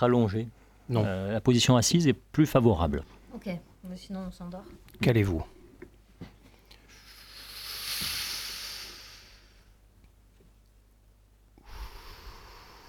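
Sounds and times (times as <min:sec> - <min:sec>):
speech: 0:00.0 - 0:05.6
slow deep breathing in and out: 0:06.6 - 0:09.8, 0:11.6 - 0:12.8.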